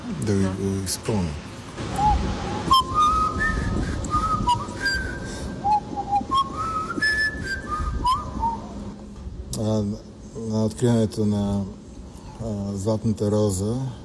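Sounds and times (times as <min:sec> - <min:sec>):
low rumble: 0:00.0 - 0:14.0
speech: 0:00.1 - 0:02.4, 0:09.6 - 0:11.8, 0:12.4 - 0:14.0
person whistling a short signal tune by mouth: 0:01.9 - 0:08.7.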